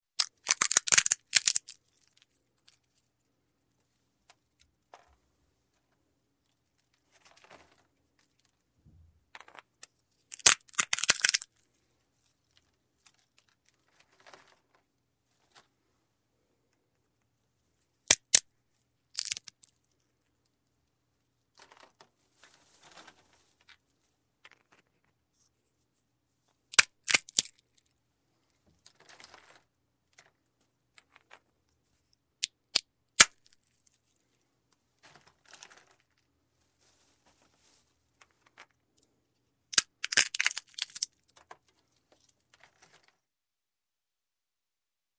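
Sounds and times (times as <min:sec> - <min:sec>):
nutcracker cracking nuts: 0:00.2 - 0:01.8, 0:10.3 - 0:11.5, 0:18.1 - 0:18.5, 0:19.1 - 0:19.8, 0:26.7 - 0:27.7, 0:32.4 - 0:33.7, 0:39.7 - 0:41.4.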